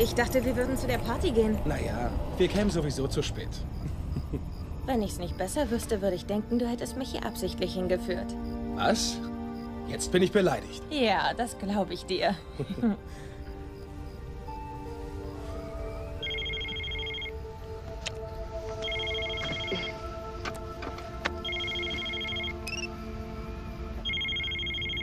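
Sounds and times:
speech: 0:00.0 - 0:09.3, 0:09.9 - 0:13.3
dense continuous sound: 0:00.0 - 0:25.0
laughter: 0:03.9 - 0:04.6, 0:12.5 - 0:13.1
telephone ringing in electronic bursts: 0:16.2 - 0:17.3, 0:18.8 - 0:20.0, 0:21.4 - 0:22.9, 0:24.0 - 0:25.0.

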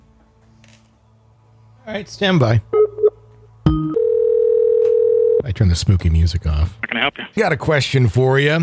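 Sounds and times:
speech: 0:01.9 - 0:02.8, 0:05.6 - 0:08.6
telephone line tone on an outgoing call: 0:03.9 - 0:05.4.

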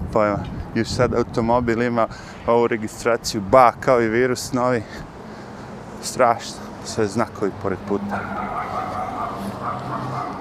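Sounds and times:
speech: 0:00.1 - 0:05.1, 0:06.0 - 0:09.0
dog barking: 0:08.1 - 0:10.3.

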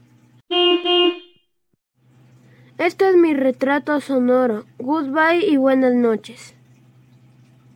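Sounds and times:
car horn honking: 0:00.5 - 0:01.5
speech: 0:02.8 - 0:06.6.

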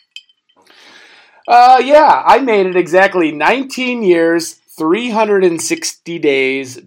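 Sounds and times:
glass clink in a toast: 0:00.0 - 0:00.6
speech: 0:01.5 - 0:06.8.

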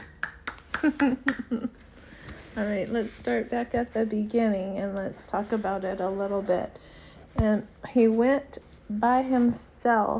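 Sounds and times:
hands clapping: 0:00.0 - 0:01.7
speech: 0:00.8 - 0:01.8, 0:02.6 - 0:10.1.

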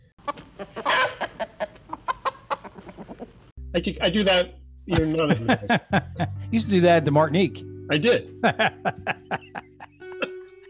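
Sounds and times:
person imitating chicken clucks and squawk: 0:00.2 - 0:03.4
speech: 0:00.6 - 0:01.0, 0:03.8 - 0:09.2
laughter: 0:04.9 - 0:06.6, 0:08.4 - 0:10.5.

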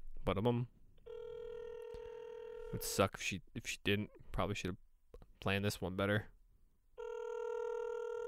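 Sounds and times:
speech: 0:00.2 - 0:00.8, 0:02.7 - 0:04.8, 0:05.4 - 0:06.3
electronic telephone ringback tone on an outgoing call: 0:01.0 - 0:02.8, 0:07.0 - 0:08.2.

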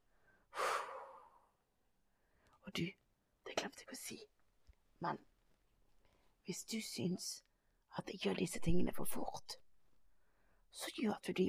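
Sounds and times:
slow breathy exhale during breathing exercise: 0:00.2 - 0:01.5
speech: 0:02.7 - 0:04.3, 0:05.0 - 0:05.3, 0:06.4 - 0:09.6, 0:10.7 - 0:11.4.

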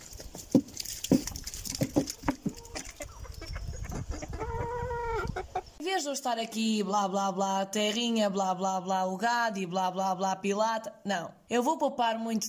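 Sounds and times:
busy rustling and pattering background: 0:00.0 - 0:04.4
several chickens clucking and squawking: 0:00.2 - 0:05.8
speech: 0:06.0 - 0:12.4.

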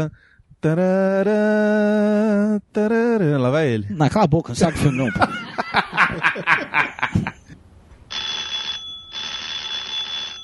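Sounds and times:
speech: 0:00.0 - 0:06.8
snickering laughter: 0:04.7 - 0:07.6
telephone ringing in buzzing electronic bursts: 0:08.1 - 0:10.4.

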